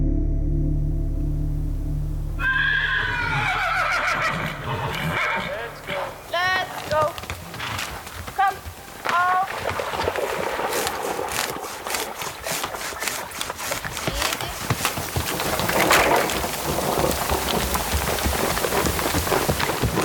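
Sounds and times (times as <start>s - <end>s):
low rumbling background: 0.0s - 3.5s
horses neighing and whinnying: 2.4s - 13.3s, 14.4s - 20.0s.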